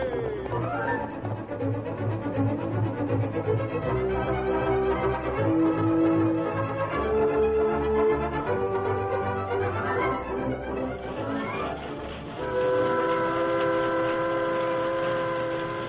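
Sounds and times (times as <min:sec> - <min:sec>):
sustained whistle-like tone: 0:00.0 - 0:01.6, 0:11.2 - 0:15.8
three-car steam train rumbling along tracks through a valley: 0:00.0 - 0:15.8.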